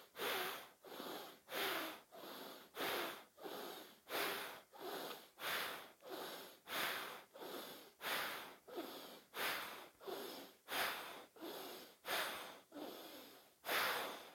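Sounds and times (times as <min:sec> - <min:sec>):
forceful breathing through one nostril: 0:00.0 - 0:14.3.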